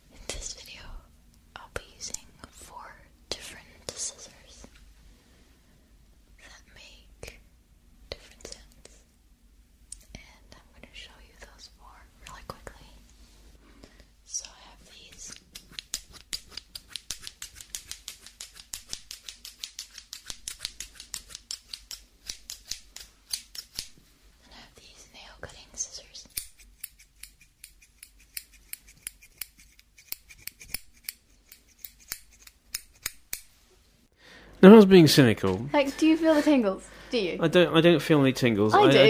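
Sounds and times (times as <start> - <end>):
faint whispering: 0.1 - 4.7, 6.4 - 7.4, 10.0 - 13.1, 14.3 - 15.4, 24.4 - 26.4
scissors snipping in an ASMR recording: 15.2 - 24.0, 26.3 - 33.5
speech: 34.6 - 39.0.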